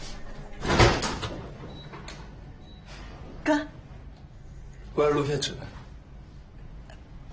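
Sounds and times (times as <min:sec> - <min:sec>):
door being handled and opened: 0:00.4 - 0:03.2
speech: 0:05.0 - 0:05.8.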